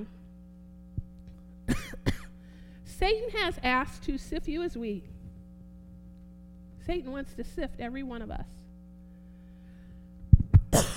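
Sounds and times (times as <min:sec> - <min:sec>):
person coughing from a tickle in the throat: 0:01.7 - 0:02.4, 0:10.7 - 0:10.9
speech: 0:03.0 - 0:05.1, 0:06.9 - 0:08.6.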